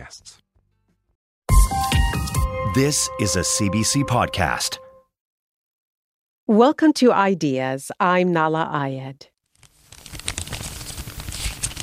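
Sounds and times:
speech: 0.0s - 0.4s, 2.5s - 4.8s, 6.5s - 9.3s
waxy paper banknote being crumpled by hand: 9.5s - 11.8s.

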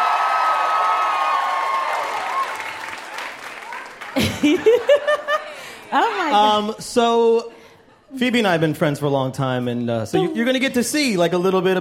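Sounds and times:
audience applauding a comedian guest: 0.0s - 5.9s
laughter: 4.1s - 6.7s
speech: 4.4s - 5.2s, 5.9s - 11.7s.

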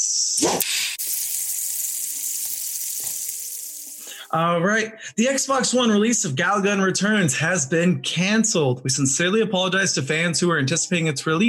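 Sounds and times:
food frying in a hot pan: 0.6s - 4.3s
speech: 4.3s - 11.4s.

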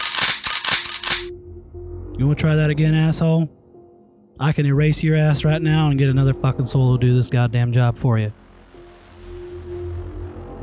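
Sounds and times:
about five guns being cocked in a room: 0.0s - 1.3s
low hum: 0.6s - 10.6s
speech: 2.2s - 3.6s, 4.4s - 8.4s.

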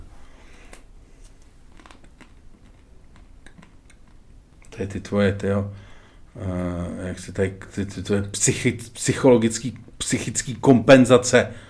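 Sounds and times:
steady low hum: 0.0s - 11.6s
person eating, chewing with lip smacking: 1.7s - 4.7s
speech: 4.8s - 11.6s.

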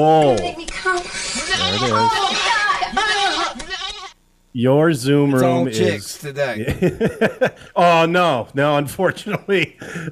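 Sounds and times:
speech: 0.0s - 3.6s, 4.5s - 10.1s
person imitating a goat bleating: 1.5s - 4.2s
laughter: 6.6s - 7.7s.

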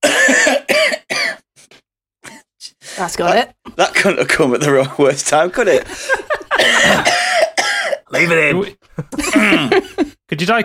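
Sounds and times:
harsh raspy coughing fit: 0.0s - 1.5s, 6.1s - 10.1s
speech: 3.0s - 7.2s, 8.2s - 10.6s
laughter: 4.6s - 7.3s, 8.4s - 10.2s.

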